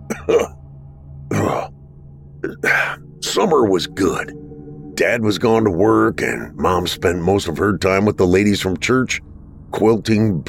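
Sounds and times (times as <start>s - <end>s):
man coughing: 0.0s - 0.6s, 1.3s - 1.7s, 2.4s - 3.0s
speech: 0.3s - 0.6s, 2.4s - 10.4s.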